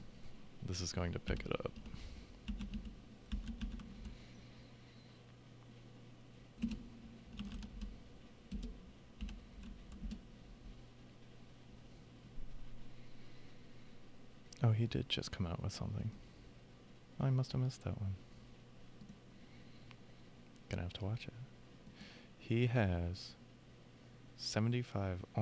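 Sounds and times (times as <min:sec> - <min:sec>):
low steady hum: 0:00.0 - 0:25.3
speech: 0:00.7 - 0:02.8, 0:14.8 - 0:16.3, 0:17.2 - 0:18.3, 0:20.7 - 0:21.5, 0:22.5 - 0:23.4, 0:24.4 - 0:25.3
typing on a computer keyboard: 0:01.3 - 0:04.2, 0:06.6 - 0:10.3.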